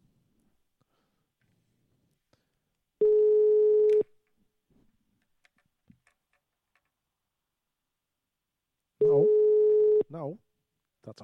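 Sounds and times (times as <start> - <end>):
telephone ringing tone while placing a call: 3.0 - 4.0, 9.0 - 10.1
speech: 11.0 - 11.2.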